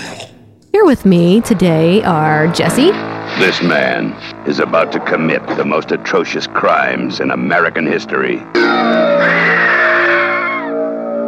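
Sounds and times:
speech: 0:00.8 - 0:09.6
person screaming: 0:08.6 - 0:10.8.

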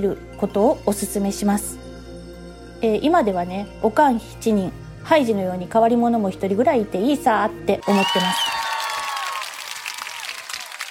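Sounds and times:
speech: 0:00.0 - 0:01.8, 0:02.8 - 0:08.5
crowd applauding: 0:07.8 - 0:10.8.

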